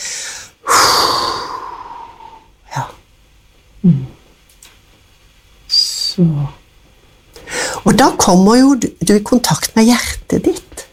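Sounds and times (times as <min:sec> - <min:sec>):
slow breathing in and out: 0:00.0 - 0:02.9, 0:07.3 - 0:07.9
speech: 0:06.2 - 0:06.6, 0:08.0 - 0:10.7.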